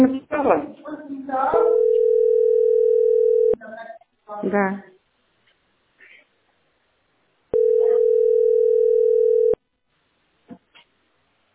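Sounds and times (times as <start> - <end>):
speech: 0.0 - 1.4, 4.4 - 4.9
steady telephone tone: 1.6 - 3.6, 7.5 - 9.6.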